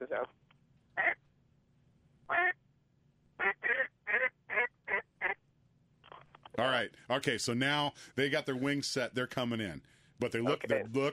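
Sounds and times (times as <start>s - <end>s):
speech: 0.0s - 0.4s, 6.6s - 11.1s
faint low hum: 0.0s - 11.1s
duck call imitating a hen's hook call with nasal quacks: 2.3s - 2.6s, 3.4s - 5.4s.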